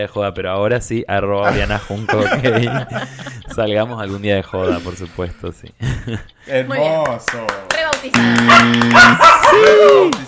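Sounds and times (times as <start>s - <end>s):
speech: 0.0s - 10.2s
laughter: 1.5s - 6.4s
dog barking: 8.4s - 9.7s.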